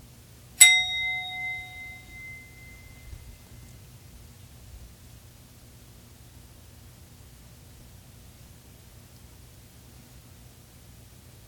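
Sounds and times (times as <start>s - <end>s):
single bell struck and ringing: 0.6s - 3.0s.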